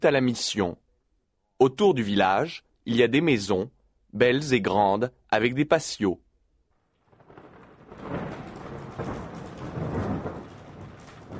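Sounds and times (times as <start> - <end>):
speech: 0.0 - 0.8, 1.6 - 6.2
thunder rumbling at night over a village in California: 7.0 - 11.3
heavy rain at night over a village in California: 7.1 - 11.3.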